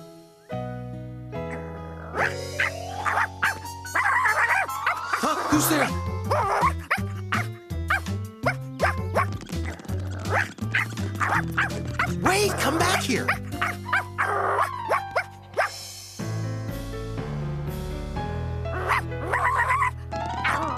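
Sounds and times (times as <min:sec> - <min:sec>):
music: 0:00.0 - 0:20.7
dog barking: 0:02.1 - 0:05.6, 0:06.3 - 0:09.3, 0:10.3 - 0:15.7, 0:18.7 - 0:20.7
speech: 0:05.6 - 0:06.8, 0:12.4 - 0:13.4.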